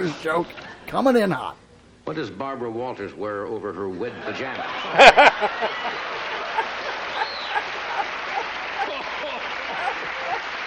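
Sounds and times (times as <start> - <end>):
speech: 0.1 - 6.0
laughter: 4.1 - 10.6
crowd clapping and cheering: 5.5 - 10.6.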